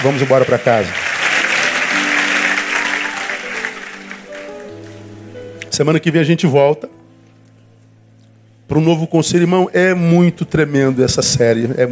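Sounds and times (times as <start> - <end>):
speech: 0.0 - 1.2, 5.8 - 7.0, 8.7 - 11.9
standing audience applause: 0.0 - 5.0.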